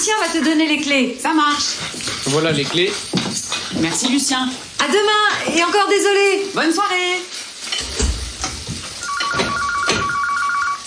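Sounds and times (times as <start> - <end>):
faint kitchen cooking noise: 0.0 - 10.8
speech: 0.1 - 7.4
electronic telephone ringtone with rapid pulsed two-tone pattern: 9.0 - 10.8.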